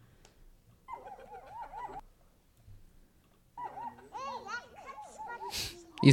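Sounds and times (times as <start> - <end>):
puppies whining and yelping in a played video clip: 0.8 - 2.0, 3.6 - 6.1.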